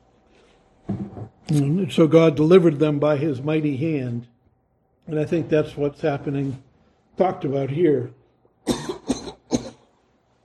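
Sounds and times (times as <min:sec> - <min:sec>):
speech: 0:01.5 - 0:04.3, 0:05.1 - 0:08.2
sharp coughs: 0:08.6 - 0:09.9.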